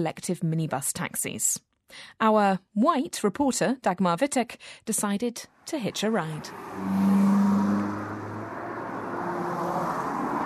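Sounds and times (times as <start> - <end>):
speech: 0.0 - 7.1
busy fast-moving traffic on a multi-lane road: 5.6 - 10.4
loud vehicle rumbling past: 5.8 - 10.4.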